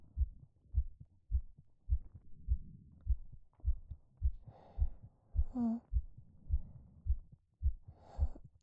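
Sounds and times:
steady human heartbeat: 0.0 - 8.6
soft breathing: 4.3 - 8.6.

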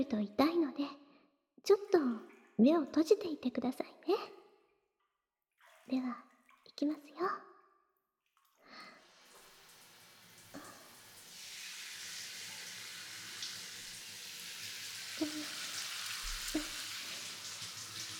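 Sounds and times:
speech: 0.0 - 0.9, 1.6 - 4.3, 5.9 - 7.5
shower spray rinsing hair: 9.2 - 18.1.

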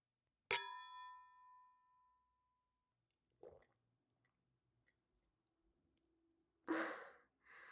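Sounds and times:
glasses clinking in a toast: 0.5 - 1.2.

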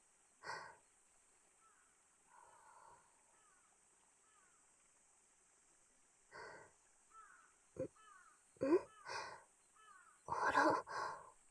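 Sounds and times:
crows cawing around a mountain shrine: 3.4 - 3.6, 7.1 - 10.6.

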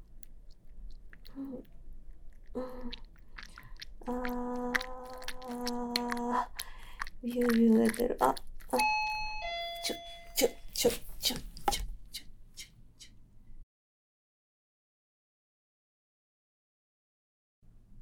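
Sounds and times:
low rumble: 0.0 - 13.6
speech: 2.6 - 3.1, 4.0 - 4.6, 7.2 - 8.8, 10.4 - 11.5
two-tone ding-dong doorbell chime: 8.8 - 10.5.

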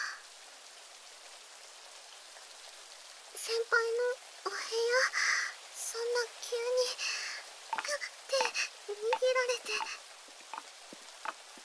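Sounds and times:
steady rain pattering on a surface: 0.0 - 11.6
speech: 3.4 - 5.3, 6.0 - 7.1, 8.9 - 10.0.

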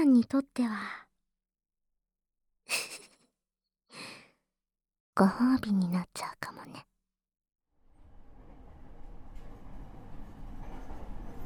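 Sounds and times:
speech: 0.0 - 1.1, 5.2 - 6.9
train arriving at station: 7.8 - 11.4.

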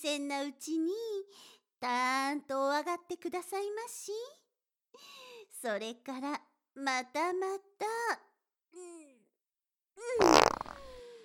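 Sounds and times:
speech: 0.0 - 9.1, 10.0 - 10.8
squeezed farts: 10.2 - 11.0.

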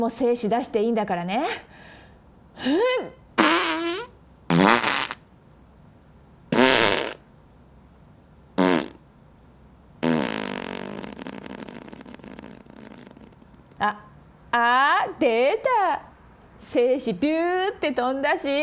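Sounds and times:
speech: 0.0 - 2.0, 2.6 - 3.7, 13.8 - 18.6
loud sputtering farts: 3.4 - 5.2, 6.5 - 7.2, 8.6 - 9.0, 10.0 - 13.8.

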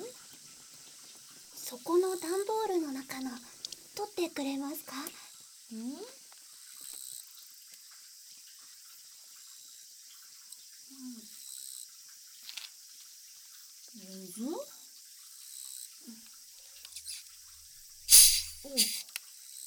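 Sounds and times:
speech: 1.8 - 6.2
carbonated head spa spray hissing: 16.9 - 17.2, 18.0 - 19.1.

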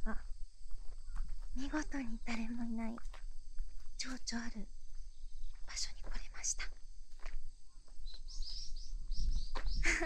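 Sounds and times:
speech: 0.0 - 0.3, 1.6 - 3.2, 4.0 - 4.8, 5.7 - 6.8
low wind rumble: 0.0 - 10.0
wild birds singing outdoors: 7.7 - 10.0.

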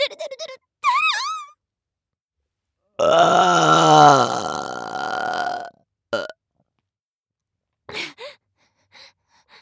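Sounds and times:
loud long burp: 3.0 - 6.4.

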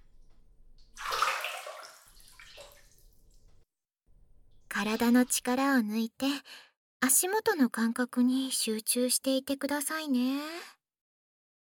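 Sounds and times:
hot water poured over a person's calves: 0.1 - 3.6, 4.4 - 5.6
speech: 4.8 - 10.7.

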